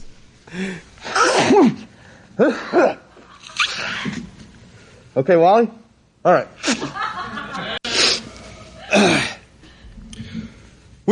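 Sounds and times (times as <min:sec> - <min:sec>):
speech: 0:00.5 - 0:01.8, 0:02.4 - 0:03.0, 0:05.2 - 0:06.6
man sneezing: 0:01.0 - 0:03.0, 0:08.8 - 0:09.4
laughter: 0:06.6 - 0:08.0.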